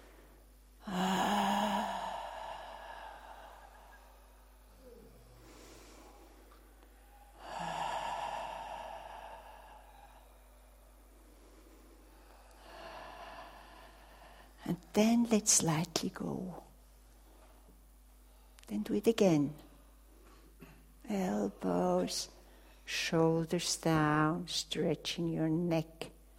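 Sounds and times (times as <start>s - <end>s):
steady low hum: 0.0s - 19.0s
breathy exhalations during a neck stretch: 0.8s - 14.6s
speech: 14.7s - 16.6s, 18.7s - 19.7s, 21.1s - 26.2s.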